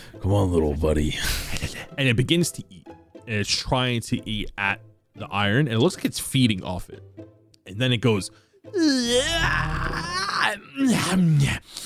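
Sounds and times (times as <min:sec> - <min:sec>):
speech: 0:00.1 - 0:11.8
person imitating a creature's yawn: 0:08.7 - 0:11.4.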